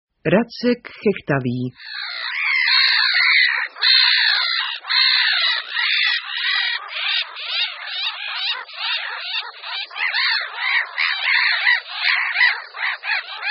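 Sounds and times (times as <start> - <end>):
speech: 0.2 - 2.2
black-headed gull colony calling: 1.7 - 13.4.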